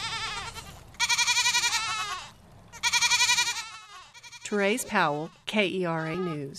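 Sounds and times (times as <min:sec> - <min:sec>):
baby goats bleating: 0:00.0 - 0:06.5
speech: 0:04.5 - 0:06.5.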